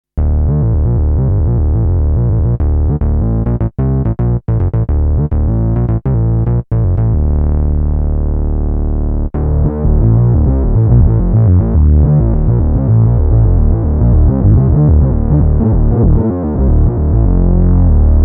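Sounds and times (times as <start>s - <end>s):
thin bass: 0.2s - 18.2s.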